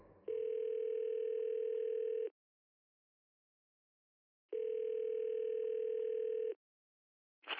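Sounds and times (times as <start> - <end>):
telephone ringing with a steady electronic tone: 0.0 - 2.3, 4.5 - 6.6.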